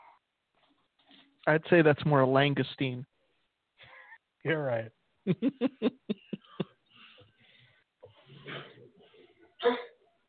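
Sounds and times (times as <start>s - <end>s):
speech: 1.4s - 3.1s, 4.4s - 6.3s
laughter: 5.3s - 6.8s
wheezy breathy sounds: 6.4s - 9.6s
person coughing sharply: 9.6s - 10.0s.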